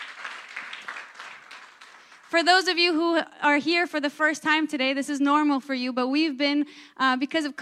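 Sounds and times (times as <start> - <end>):
room full of people applauding: 0.0 - 2.4
speech: 2.3 - 7.5.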